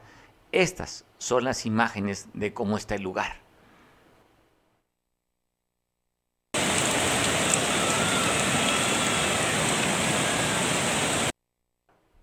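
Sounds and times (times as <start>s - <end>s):
speech: 0.5s - 3.4s
swollen river rushing: 6.6s - 11.3s.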